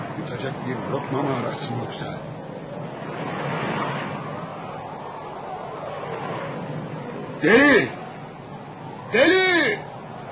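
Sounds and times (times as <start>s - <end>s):
speech: 0.4s - 3.3s, 7.4s - 8.0s, 9.1s - 9.8s
rough stormy sea waves crashing: 2.4s - 8.0s.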